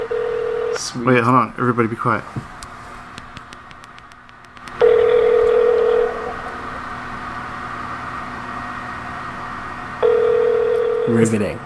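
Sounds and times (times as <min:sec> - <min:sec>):
steady electronic telephone tone over a phone line: 0:00.0 - 0:01.0, 0:04.8 - 0:06.8, 0:10.0 - 0:11.2
speech: 0:00.8 - 0:02.6, 0:11.1 - 0:11.6
faint phone line hiss: 0:04.8 - 0:06.7, 0:10.0 - 0:11.3.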